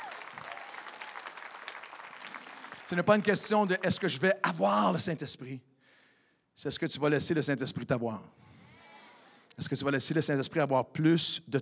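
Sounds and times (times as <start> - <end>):
congregation applauding during a church service: 0.0 - 5.0
speech: 2.9 - 5.7, 6.6 - 8.5, 9.6 - 11.6.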